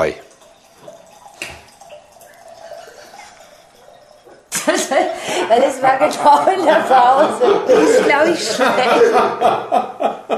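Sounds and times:
speech: 0.0 - 0.3, 4.9 - 10.2
drink pouring into a glass: 0.0 - 5.8
laughter: 4.5 - 10.3.

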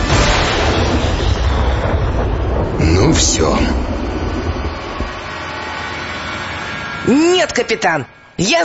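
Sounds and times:
cannon fire aboard a schooner: 0.2 - 5.5
speech: 3.2 - 3.9, 7.1 - 8.6.

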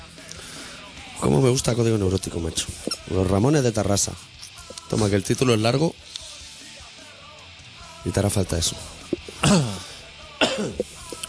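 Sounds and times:
speech: 1.2 - 6.1, 8.0 - 9.8, 10.6 - 11.0
harsh throaty coughs: 9.2 - 11.0.

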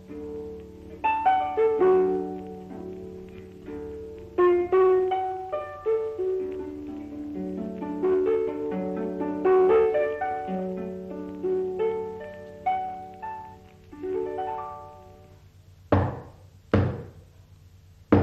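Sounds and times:
plucked musical notes: 0.0 - 16.4
knocking on a door: 15.9 - 17.2.

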